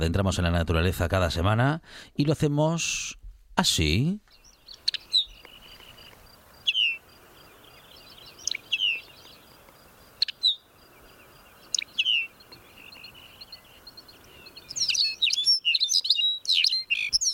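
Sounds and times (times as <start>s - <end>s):
speech: 0.0s - 4.3s
small bird singing a bright metallic musical song: 4.2s - 17.3s.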